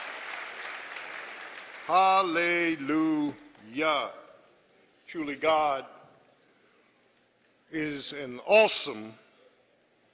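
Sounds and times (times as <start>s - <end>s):
crowd clapping: 0.0s - 2.4s
speech: 1.9s - 4.2s, 5.1s - 6.0s, 7.7s - 9.2s.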